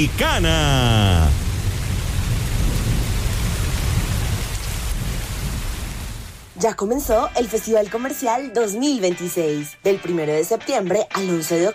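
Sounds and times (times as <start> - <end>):
speech: 0.0 - 1.4, 6.6 - 11.7
rumble of thunder: 0.0 - 6.4
heavy rain: 0.0 - 6.6.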